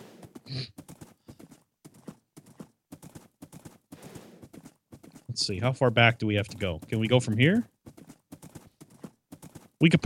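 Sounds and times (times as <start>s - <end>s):
horse hooves clip-clopping: 0.0s - 10.0s
speech: 5.4s - 7.7s, 9.8s - 10.0s.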